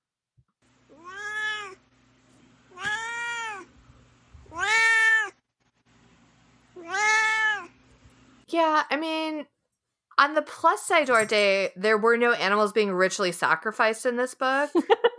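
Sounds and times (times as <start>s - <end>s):
domestic cat meowing: 0.9s - 1.8s, 2.7s - 3.7s, 4.4s - 5.4s, 6.8s - 7.8s
speech: 8.5s - 9.6s, 10.2s - 15.0s
laughter: 14.6s - 15.1s.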